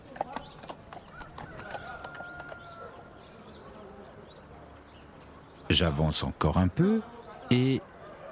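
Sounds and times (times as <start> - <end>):
donkey hooves clip-clopping on a hard village street: 0.0 - 5.6
speech: 5.7 - 8.2.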